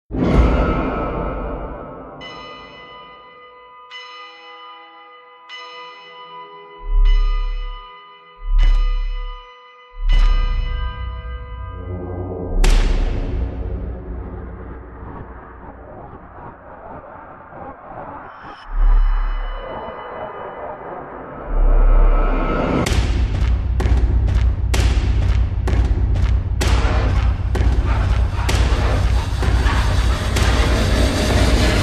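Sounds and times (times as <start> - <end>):
scary sounds: 0.1 - 3.6, 6.6 - 31.8.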